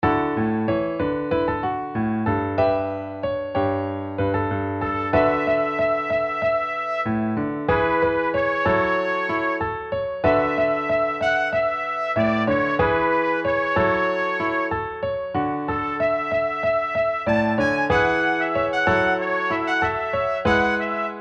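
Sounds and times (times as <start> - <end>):
piano melody: 0.0 - 21.1.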